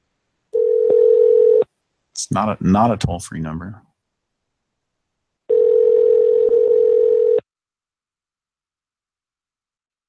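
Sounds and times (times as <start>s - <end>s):
steady single-pitched telephone tone: 0.6s - 1.7s, 5.5s - 7.4s
speech: 2.2s - 3.9s.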